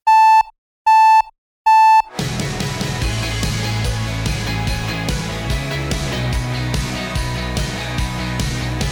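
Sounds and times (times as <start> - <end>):
harsh buzzy beeping alarm: 0.0 - 2.1
music playing: 2.1 - 8.8.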